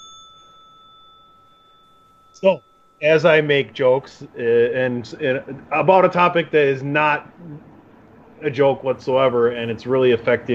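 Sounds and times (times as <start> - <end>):
bright bell ding: 0.0 - 3.7
speech: 2.4 - 7.7, 8.4 - 10.5.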